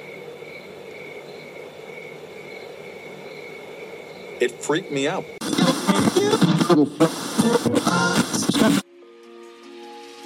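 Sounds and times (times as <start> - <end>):
crickets chirping at night: 0.0 - 5.4
speech: 4.4 - 5.4, 6.1 - 8.8.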